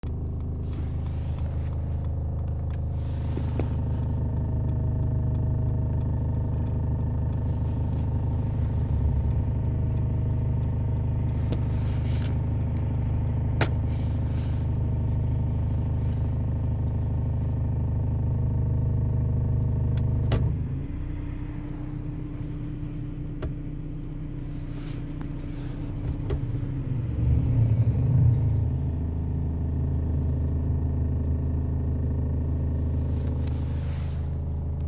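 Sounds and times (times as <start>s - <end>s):
C200 coupe C-Class W205 vibration and rumble when held: 0.0s - 34.8s.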